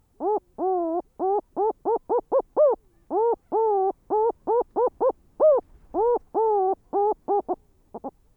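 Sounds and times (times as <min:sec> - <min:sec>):
blue petrel calling: 0:00.2 - 0:08.1.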